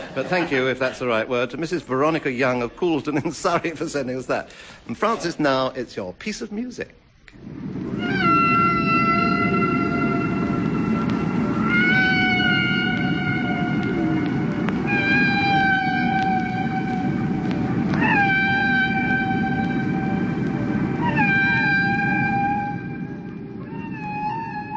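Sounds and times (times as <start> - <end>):
laughter: 0.0 - 1.4, 2.8 - 4.1
speech: 0.2 - 7.7
humpback whale song: 7.4 - 24.7
low underwater rumble: 7.4 - 24.7.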